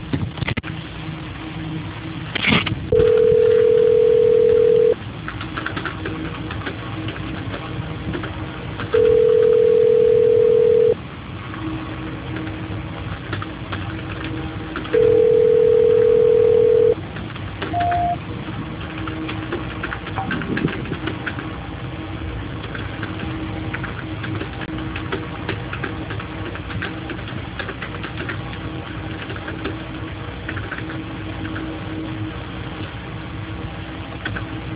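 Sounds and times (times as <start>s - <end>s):
constant low rumble: 0.0s - 34.7s
telephone line tones during a call transfer: 2.9s - 5.0s, 8.9s - 11.0s, 14.9s - 17.0s, 17.7s - 18.2s.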